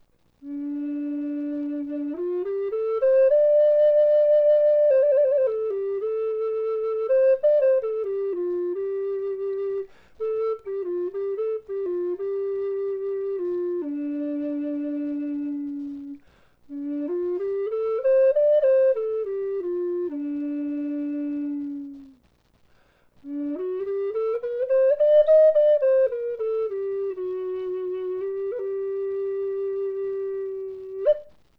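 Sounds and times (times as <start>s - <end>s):
D flute of cedar and walnut playing: 0.0s - 22.3s, 23.2s - 31.5s.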